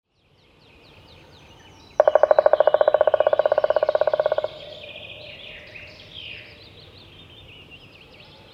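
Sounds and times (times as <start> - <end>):
steady background noise: 0.6 - 8.5
black woodpecker drumming: 2.0 - 5.2.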